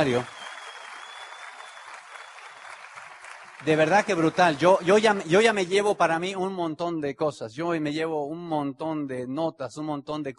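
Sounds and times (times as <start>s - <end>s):
speech: 0.0s - 0.4s, 3.6s - 10.3s
audience applause: 0.0s - 5.8s.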